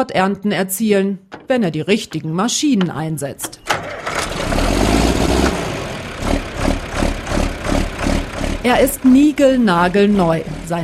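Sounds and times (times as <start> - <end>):
speech: 0.0 - 3.7, 8.6 - 10.8
tractor engine idling and revving: 2.8 - 10.8.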